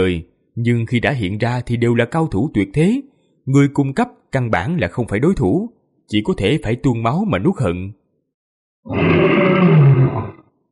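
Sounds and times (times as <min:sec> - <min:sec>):
speech: 0:00.0 - 0:08.0, 0:08.8 - 0:10.4
lion roaring: 0:08.9 - 0:10.5.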